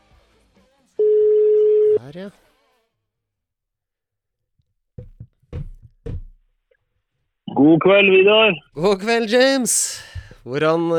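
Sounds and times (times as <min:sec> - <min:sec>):
telephone ringing tone while calling someone: 0:01.0 - 0:02.0
speech: 0:02.1 - 0:02.5, 0:07.6 - 0:10.9.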